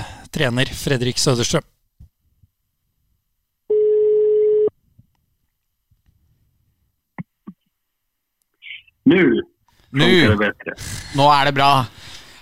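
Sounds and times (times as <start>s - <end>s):
speech: 0.4s - 1.7s, 9.0s - 12.3s
telephone ringback tone on an outgoing call: 3.7s - 4.7s.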